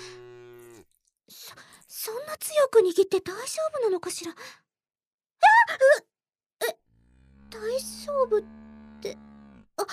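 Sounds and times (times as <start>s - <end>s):
cow mooing: 0.0s - 0.8s, 6.9s - 9.7s
speech: 1.3s - 4.6s, 5.8s - 6.1s, 7.6s - 9.9s.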